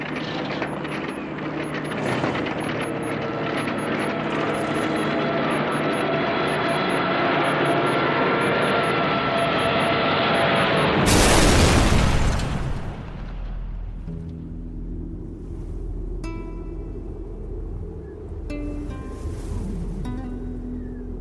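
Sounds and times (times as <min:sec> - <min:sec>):
aircraft engine roar: 0:00.0 - 0:21.1
low rumble: 0:00.0 - 0:21.1
loud booming crash of an airplane engine breaking down in the Sahara desert: 0:11.0 - 0:14.1.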